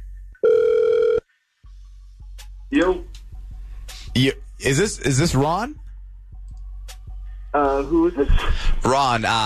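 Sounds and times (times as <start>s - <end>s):
phone ringback tone on a radio station's outgoing call: 0.4s - 1.2s
speech: 2.7s - 3.1s, 4.2s - 5.8s, 7.6s - 9.4s.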